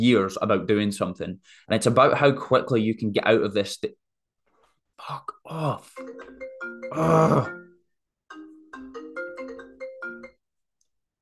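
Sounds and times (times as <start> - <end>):
speech: 0.0 - 4.0, 5.0 - 7.6
mobile phone ringtone with bright melodic electronic notes: 6.0 - 10.4.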